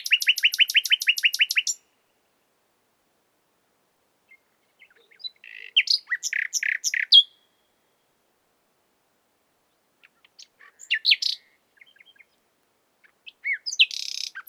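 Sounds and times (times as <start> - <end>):
common nightingale Luscinia megarhynchos singing: 0.0 - 1.9, 4.3 - 8.0, 10.0 - 14.4.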